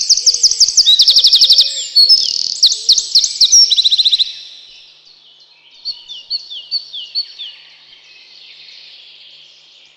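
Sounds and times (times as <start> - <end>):
Eurasian wren singing high and piercing: 0.0 - 4.8, 5.8 - 7.7.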